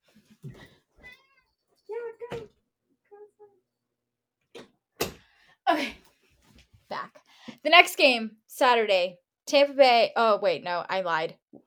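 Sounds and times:
fat house cat meowing to get out of a bedroom: 1.0 - 1.5
speech: 7.6 - 11.4.

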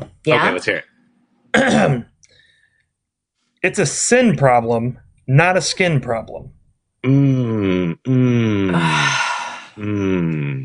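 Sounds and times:
speech: 0.2 - 0.9, 1.5 - 2.1, 3.6 - 9.2, 9.8 - 10.6
person groaning: 7.0 - 10.6
breathy sighing exhale: 8.4 - 10.2.

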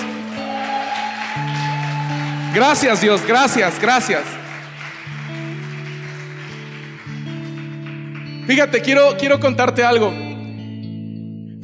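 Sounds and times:
audience clapping in applause: 0.0 - 9.0
speech: 2.6 - 4.4, 8.5 - 10.2.

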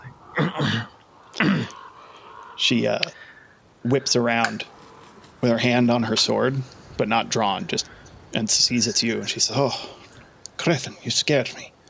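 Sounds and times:
person awkwardly clearing throat: 0.4 - 1.8
speech: 2.7 - 4.8, 5.4 - 10.0, 10.6 - 11.7.

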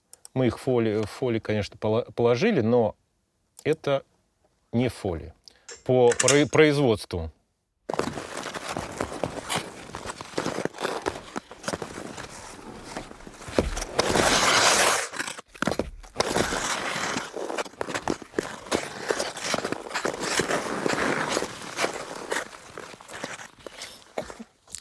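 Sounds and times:
speech: 0.4 - 3.0, 3.6 - 4.1, 4.7 - 8.0
ice skates gliding and striding across ice: 7.9 - 24.6.

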